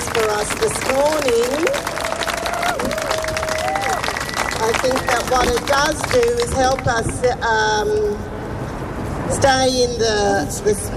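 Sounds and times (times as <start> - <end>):
audience applauding performers: 0.0 - 6.4
speech: 0.4 - 2.0, 4.8 - 8.3, 9.3 - 10.9.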